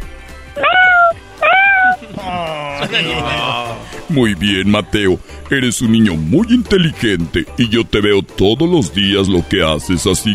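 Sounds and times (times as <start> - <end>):
child imitating a small cat's meow: 0.6 - 2.1
laughter: 2.0 - 4.1
speech: 2.8 - 10.3.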